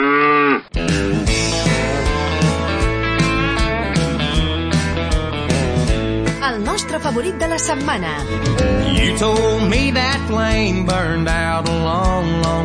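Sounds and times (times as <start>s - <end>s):
cow mooing: 0.0s - 0.7s
lively country music with a steady beat and bright instruments: 0.7s - 12.6s
speech: 7.1s - 12.6s.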